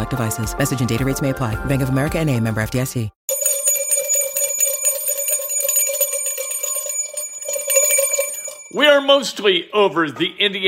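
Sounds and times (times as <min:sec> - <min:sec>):
speech: 0:00.0 - 0:03.2, 0:08.7 - 0:10.6
single bell ringing loudly with rapid metallic clatter: 0:03.3 - 0:09.1.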